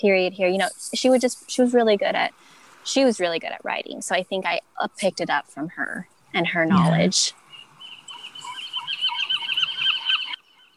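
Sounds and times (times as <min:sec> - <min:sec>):
speech: 0:00.0 - 0:07.4
seagulls calling: 0:08.0 - 0:10.4.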